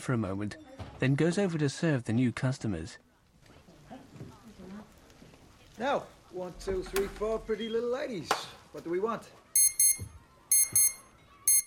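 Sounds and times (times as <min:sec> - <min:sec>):
speech: 0:00.0 - 0:03.1, 0:05.8 - 0:09.4
alarm clock ringing with sharp high electronic beeps: 0:09.6 - 0:11.6.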